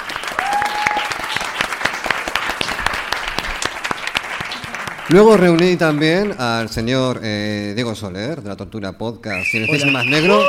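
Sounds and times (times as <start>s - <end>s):
live audience applause: 0.0s - 6.7s, 10.0s - 10.4s
speech: 5.1s - 10.4s
whistle: 9.3s - 10.4s.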